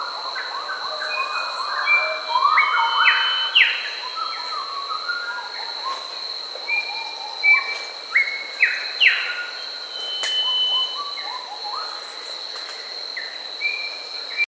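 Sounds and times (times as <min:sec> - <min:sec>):
steady high insect drone in Papua New Guinea: 0:00.0 - 0:14.4
Grey Whistler song in Papua New Guinea: 0:01.0 - 0:06.0, 0:06.7 - 0:12.0.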